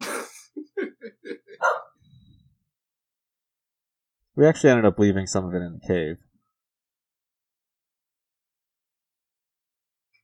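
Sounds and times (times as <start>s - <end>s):
laughter: 0.5s - 1.9s
dog barking in short sharp yaps: 1.6s - 2.0s
speech: 4.4s - 6.3s.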